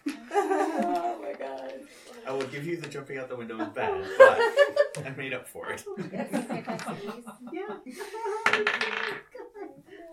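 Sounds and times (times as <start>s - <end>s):
laughter: 0.0s - 1.3s, 3.6s - 5.1s, 5.9s - 10.1s
speech: 2.4s - 9.4s
dice rolled across a hard surface: 8.4s - 9.2s.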